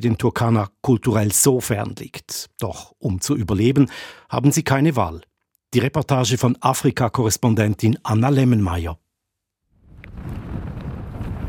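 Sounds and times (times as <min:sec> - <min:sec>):
speech: 0:00.0 - 0:09.0
strong wind buffeting microphone on a desert lakeshore: 0:09.8 - 0:11.4.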